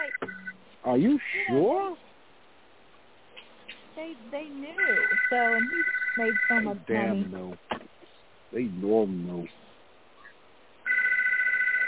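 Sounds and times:
phone ringing with an electronic trill: 0.0 - 0.6, 4.7 - 7.2, 10.8 - 11.8
soft hiss: 0.0 - 11.8
speech: 0.8 - 2.0, 4.0 - 7.7, 8.5 - 9.6.

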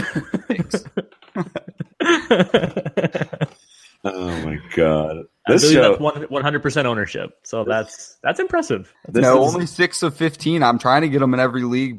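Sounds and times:
person clearing throat: 0.0 - 1.0
person coughing: 0.0 - 1.0
laughter: 0.0 - 4.6
speech: 0.2 - 1.5, 2.3 - 2.8, 4.8 - 11.9.

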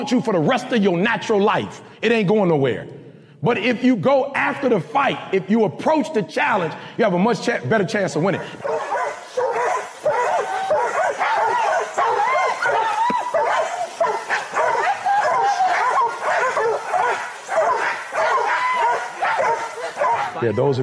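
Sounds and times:
speech: 0.0 - 9.6, 20.4 - 20.8
several dogs barking and yipping in an overlapping chorus: 8.5 - 20.6.

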